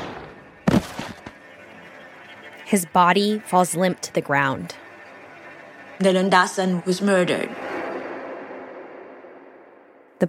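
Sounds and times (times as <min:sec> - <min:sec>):
gunshot fired from the shadows near a porch: 0:00.0 - 0:00.9
speech: 0:02.7 - 0:04.8, 0:06.0 - 0:07.6.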